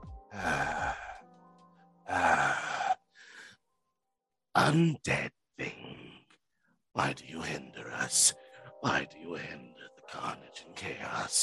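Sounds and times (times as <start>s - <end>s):
heavy rasping exhalations with a groaning edge: 0.3s - 1.2s, 2.1s - 3.5s
breathy gasp: 0.3s - 1.3s, 2.1s - 3.6s
speech: 4.6s - 5.4s, 7.0s - 11.4s.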